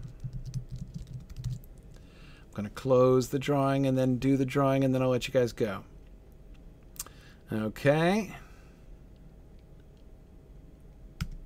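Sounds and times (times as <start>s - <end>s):
typing on a computer keyboard: 0.0s - 1.7s
speech: 2.6s - 5.9s, 7.5s - 8.4s.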